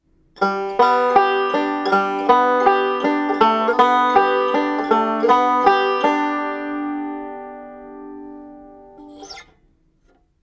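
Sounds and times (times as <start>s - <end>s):
banjo with slide: 0.4s - 10.2s.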